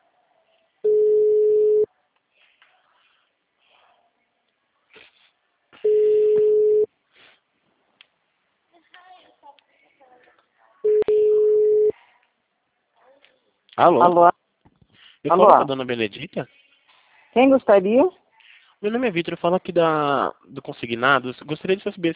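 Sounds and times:
electronic telephone ringback tones during an outgoing call: 0.8 - 1.9, 5.8 - 6.9, 10.9 - 11.9
speech: 13.8 - 14.3, 15.2 - 16.6, 17.3 - 18.2, 18.8 - 22.1.

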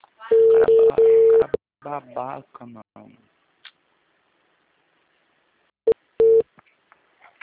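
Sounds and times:
telephone tones after a dropped call: 0.3 - 1.6, 6.2 - 6.5
speech: 1.8 - 2.8.

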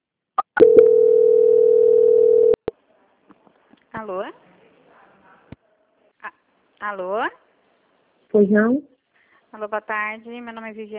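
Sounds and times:
steady telephone line tone during a call transfer: 0.6 - 2.6
speech: 4.0 - 4.5, 6.8 - 7.4, 8.3 - 8.9, 9.5 - 10.9.

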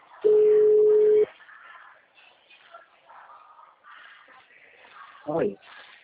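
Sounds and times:
telephone busy tone after a dropped call: 0.2 - 1.3.

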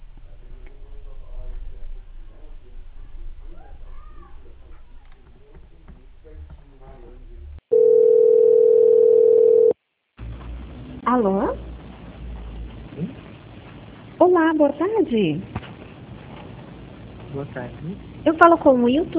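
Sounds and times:
telephone line tone while a call is transferred: 7.7 - 9.8
speech: 14.5 - 15.5, 17.4 - 19.1.

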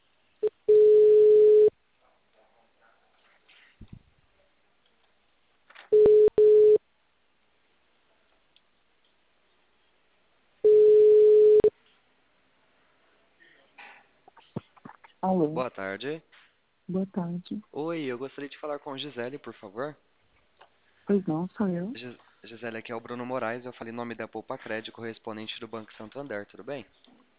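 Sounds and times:
telephone ringback tone while a call is being placed: 0.4 - 1.7, 6.0 - 6.8, 10.6 - 11.7
speech: 15.2 - 20.1, 21.1 - 27.2.

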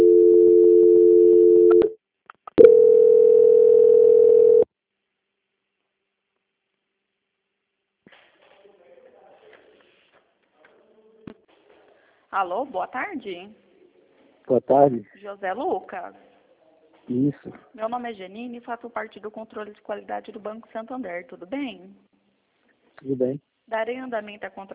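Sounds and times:
telephone line tones while a call is transferred to a bank's quality-control desk: 0.0 - 1.9, 2.6 - 4.7
speech: 12.4 - 13.6, 14.5 - 16.3, 17.1 - 22.1, 23.0 - 24.7.

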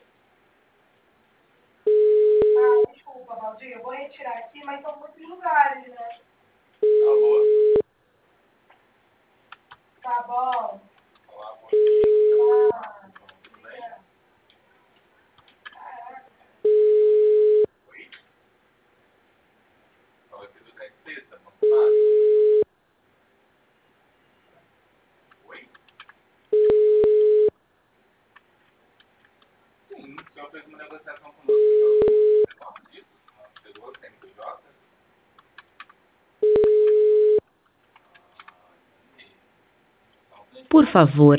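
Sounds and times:
telephone busy signal: 1.9 - 2.9, 6.8 - 7.8, 11.8 - 12.7, 16.7 - 17.7, 21.6 - 22.6, 26.6 - 27.5, 31.5 - 32.5, 36.4 - 37.4
speech: 3.5 - 6.3, 41.0 - 41.3.

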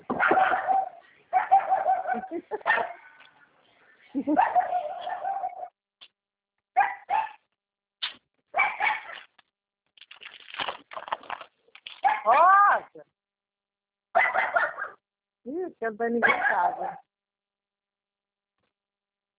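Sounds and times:
dogs barking and yelping: 0.1 - 3.1, 4.2 - 5.8, 6.8 - 7.5, 8.6 - 9.2, 12.0 - 12.4, 14.2 - 15.0, 16.2 - 17.1
speech: 4.2 - 4.6, 15.8 - 17.0.

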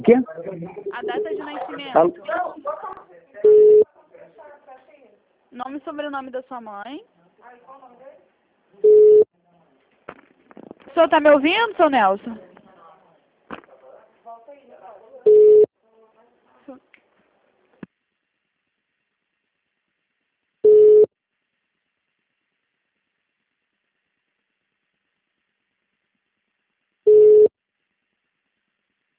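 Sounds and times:
speech: 0.0 - 2.5, 5.9 - 8.1, 10.9 - 12.4
faint scattered noises: 0.0 - 20.4
mid-pitched telephone hold tone beeps: 27.1 - 27.5.

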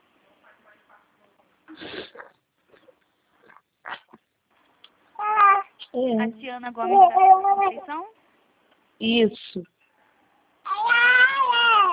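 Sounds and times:
nine-month-old baby babbling: 5.2 - 5.8, 6.8 - 8.1, 10.7 - 11.9
speech: 6.2 - 8.2, 9.0 - 9.7.

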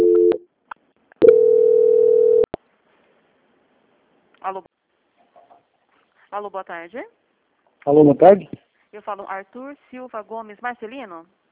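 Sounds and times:
telephone line tones during a call transfer: 0.0 - 0.4, 1.2 - 2.5
speech: 4.4 - 4.8, 6.3 - 7.2, 7.8 - 11.4.

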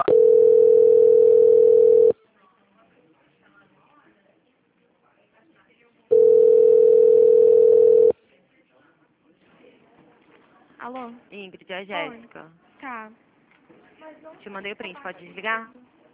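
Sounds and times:
telephone tone during bank call transfer: 0.0 - 2.1, 6.1 - 8.1
speech: 11.0 - 13.2, 14.0 - 15.9.

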